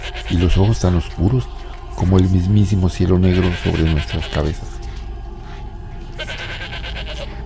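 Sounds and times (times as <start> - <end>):
goat bleating: 0.0 - 1.1, 3.2 - 4.6, 6.1 - 7.4
steady low rumble: 0.0 - 7.4
speech: 0.3 - 4.8.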